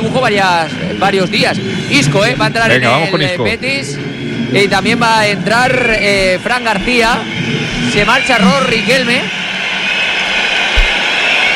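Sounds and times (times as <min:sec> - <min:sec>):
speech: 0:00.2 - 0:09.4
football stadium crowd applauding and whistling: 0:07.8 - 0:11.5
low thump: 0:10.8 - 0:11.0.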